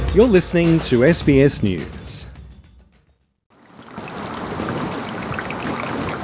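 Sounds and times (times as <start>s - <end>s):
speech: 0.1s - 2.3s
running meltwater from a melting glacier: 3.5s - 6.2s.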